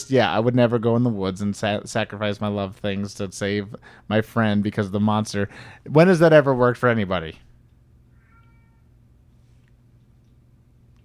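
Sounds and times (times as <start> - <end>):
low hum: 0.0 - 11.0
speech: 0.1 - 7.5
cat meowing loudly: 8.1 - 8.9.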